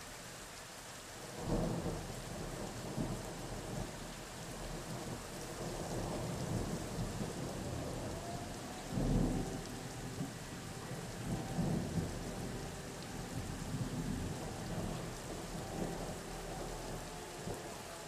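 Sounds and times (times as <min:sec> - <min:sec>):
storm siren: 0:01.3 - 0:18.0.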